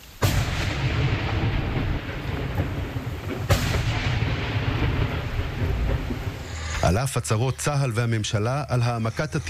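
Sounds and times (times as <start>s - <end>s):
gunshots fired at explosive drones: 0.2s - 6.8s
constant heavy wind-like rumble: 0.2s - 9.4s
speech: 6.9s - 9.4s.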